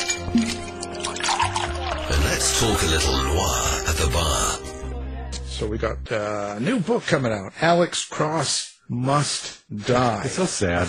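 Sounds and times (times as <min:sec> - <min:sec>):
drink being poured into a glass: 0:00.0 - 0:02.7
speech: 0:02.4 - 0:04.7, 0:05.6 - 0:10.8.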